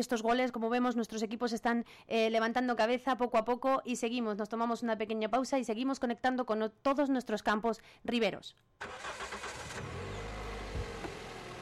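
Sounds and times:
speech: 0.0 - 9.4
car engine rumbling: 8.8 - 11.6.

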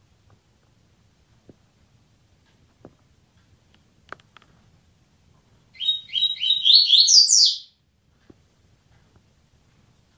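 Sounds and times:
Double-collared seedeater chirping: 5.8 - 7.8.

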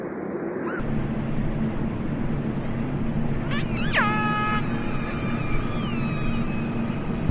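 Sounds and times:
continuous low rumbling noise: 0.0 - 7.3
orca call sweeping into a steady harmonic tone: 3.4 - 7.2.

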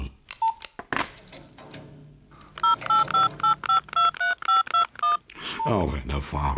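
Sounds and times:
touch-tone telephone keypad beeps: 0.4 - 0.7, 2.4 - 5.8
speech: 5.7 - 6.5.

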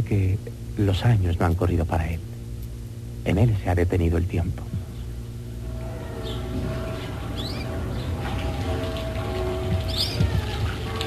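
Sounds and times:
speech: 0.0 - 2.3, 3.2 - 4.8
birdsong in a small garden: 4.8 - 11.0
distant cowbell: 5.6 - 11.0
water flowing in a fountain: 5.8 - 11.0.

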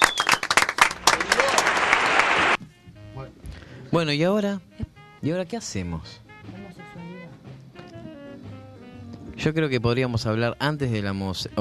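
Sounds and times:
brisk applause: 0.0 - 2.6
speech: 3.9 - 6.2, 9.4 - 11.5.

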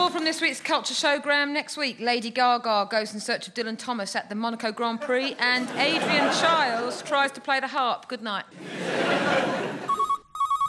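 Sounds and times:
speech: 0.3 - 9.6
laughter: 5.0 - 7.4, 8.5 - 10.0
telephone ringing with a rapid trilling electronic bell: 9.8 - 10.6.

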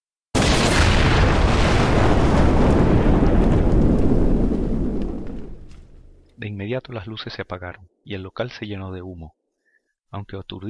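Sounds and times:
powerful explosion aboard a ship: 0.4 - 6.3
speech: 6.7 - 9.4, 10.1 - 10.6.

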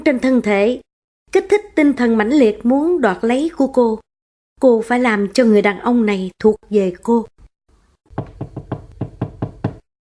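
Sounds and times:
speech: 0.0 - 4.0, 4.6 - 7.3
gentle knocking on a door from outside: 8.1 - 9.9.

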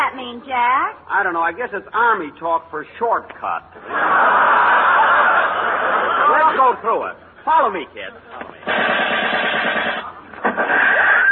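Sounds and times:
speech: 0.2 - 4.8, 6.6 - 9.8
laughter: 3.8 - 6.7
machine-gun fire on an army infiltration course: 8.6 - 11.2.

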